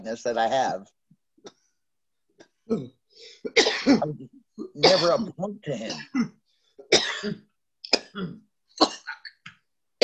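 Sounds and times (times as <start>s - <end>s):
speech: 0.0s - 1.6s, 2.7s - 6.4s, 7.2s - 7.5s, 8.2s - 9.0s
person coughing after a bong hit: 2.7s - 4.2s, 4.8s - 9.2s.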